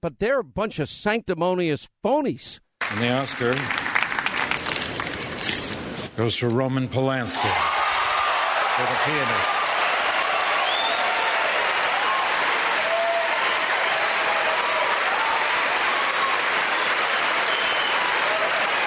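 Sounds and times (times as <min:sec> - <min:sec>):
speech: 0:00.0 - 0:04.0, 0:06.2 - 0:07.7, 0:08.8 - 0:09.6
large audience applauding at awards ceremony: 0:02.8 - 0:05.8, 0:07.4 - 0:18.8
audience cheers and whoops at awards ceremony: 0:07.4 - 0:18.8.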